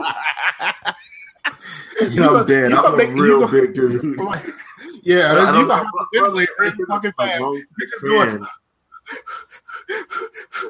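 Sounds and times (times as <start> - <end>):
laughter: 0.0 - 8.5, 9.1 - 10.6
person imitating rapid panicky baby-like breathing: 1.6 - 2.1, 9.0 - 10.6
speech: 2.0 - 10.6.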